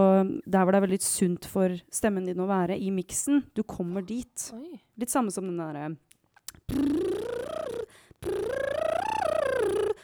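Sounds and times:
speech: 0:00.0 - 0:07.2
sustained lip trills as a vocal exercise: 0:06.4 - 0:10.0.

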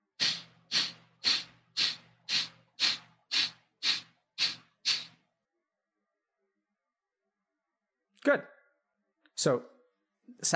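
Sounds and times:
person breathing out hard: 0:00.2 - 0:05.2
speech: 0:08.2 - 0:08.6, 0:09.4 - 0:10.5.

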